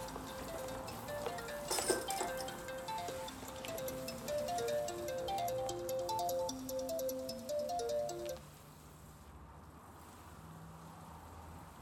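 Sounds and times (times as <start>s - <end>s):
mobile phone ringing with an electronic melody: 0.0s - 8.4s.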